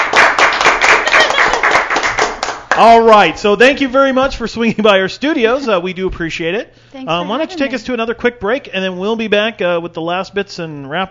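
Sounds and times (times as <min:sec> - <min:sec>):
applause from a small studio group: 0:00.0 - 0:02.9
speech: 0:02.8 - 0:11.0.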